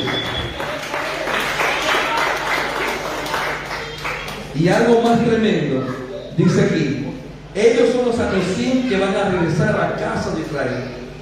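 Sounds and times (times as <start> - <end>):
audience applause: 0.0 - 4.6
speech: 4.6 - 11.0.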